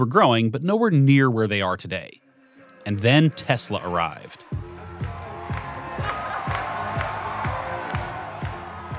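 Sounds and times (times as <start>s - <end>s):
speech: 0.0s - 2.2s, 2.8s - 4.6s
steady thumping music beat: 2.6s - 8.9s
large crowd cheering and shouting at factory opening event: 2.9s - 8.9s.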